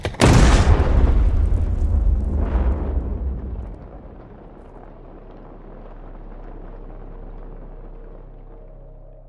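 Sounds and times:
grenade exploding after a tripwire is hit: 0.0 - 7.2.

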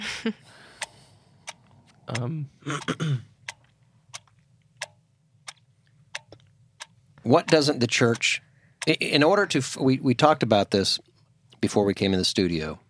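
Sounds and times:
speech: 0.2 - 0.6, 2.1 - 3.3, 7.2 - 12.8
clock ticking: 0.8 - 9.8.

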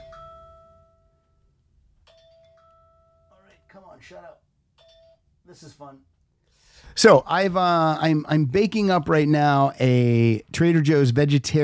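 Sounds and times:
kitchen timer chiming: 2.1 - 3.4, 4.8 - 5.2
speech: 4.0 - 4.5, 5.5 - 6.2, 6.8 - 11.6.

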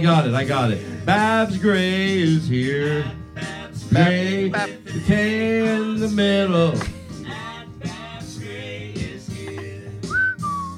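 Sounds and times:
speech: 0.0 - 7.0
person whistling a short melodic phrase: 10.0 - 10.7.

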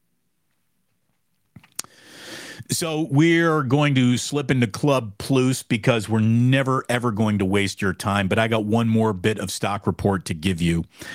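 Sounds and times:
mouth smacking click: 1.6 - 2.0
person sipping a drink: 1.6 - 2.0
speech: 2.7 - 11.1.

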